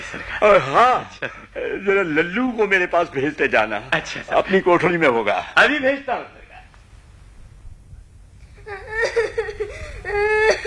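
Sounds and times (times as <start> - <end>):
speech: 0.1 - 6.4
child crying and whimpering: 8.6 - 10.6.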